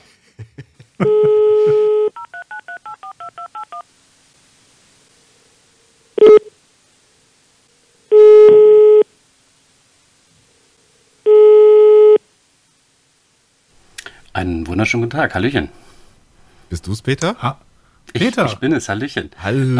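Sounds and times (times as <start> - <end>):
laughter: 0.0 - 1.9
steady telephone dial tone: 1.0 - 3.8, 6.2 - 6.5, 8.1 - 9.1, 11.3 - 12.2
telephone ringing tone for incoming call: 1.0 - 3.8, 11.3 - 12.2
speech: 14.8 - 15.8, 16.7 - 19.7.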